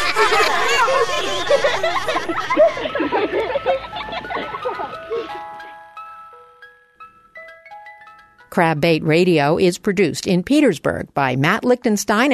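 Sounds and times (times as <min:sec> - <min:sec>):
lively crowd of children chattering and giggling: 0:00.0 - 0:06.1
tinkly jingle from a wild salmon truck driving by: 0:02.5 - 0:09.1
speech: 0:08.6 - 0:12.3.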